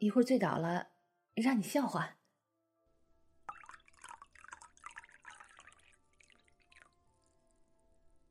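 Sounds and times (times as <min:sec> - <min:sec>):
speech: 0:00.0 - 0:02.2
small drips of liquor: 0:03.5 - 0:07.7
liquor pouring into a glass: 0:03.5 - 0:07.9.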